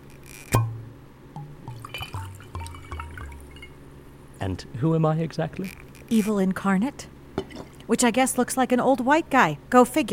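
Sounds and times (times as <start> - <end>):
glass clinking when set down: 0.6 - 3.9
liquid glugging and splashing into a glass: 1.4 - 3.9
speech: 4.4 - 7.1, 7.9 - 10.1.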